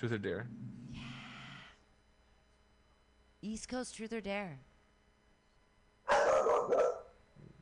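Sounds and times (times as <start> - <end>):
speech: 0.0 - 1.1, 3.4 - 4.7, 6.7 - 7.6
dog barking: 6.1 - 7.2.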